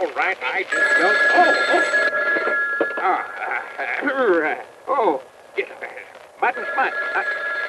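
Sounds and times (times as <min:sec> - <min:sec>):
speech: 0:00.0 - 0:02.3, 0:03.0 - 0:07.6
telephone ringing with a steady electronic tone: 0:00.7 - 0:03.9, 0:06.4 - 0:07.6.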